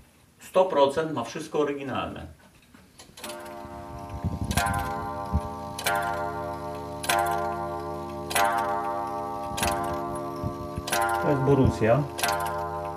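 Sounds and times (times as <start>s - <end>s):
speech: 0.5s - 2.4s, 11.5s - 12.3s
antique wall clock striking by hand: 3.2s - 12.9s.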